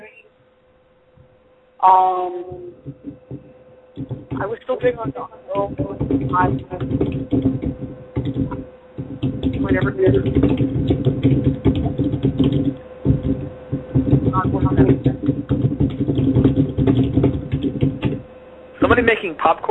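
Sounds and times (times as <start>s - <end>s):
speech: 1.8s - 3.3s, 4.0s - 8.7s, 9.6s - 10.7s, 18.9s - 19.7s
typing on a computer keyboard: 5.6s - 18.2s.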